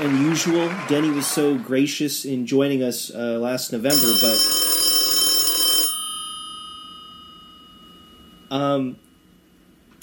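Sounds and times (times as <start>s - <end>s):
speech: 0.0s - 4.5s, 8.5s - 9.0s
telephone ringing with an incoming call: 3.9s - 8.6s.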